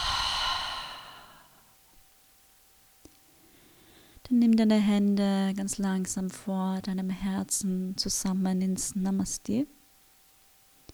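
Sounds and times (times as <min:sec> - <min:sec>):
slow breath released through an open mouth after a held inhale during a guided meditation: 0:00.0 - 0:01.6
speech: 0:04.3 - 0:09.8.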